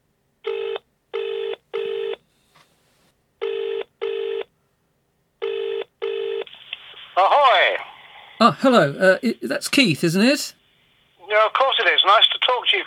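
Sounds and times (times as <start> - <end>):
telephone ringing: 0.4 - 2.2, 3.4 - 4.5, 5.4 - 6.5
speech: 7.2 - 7.8, 8.4 - 10.6, 11.4 - 12.8.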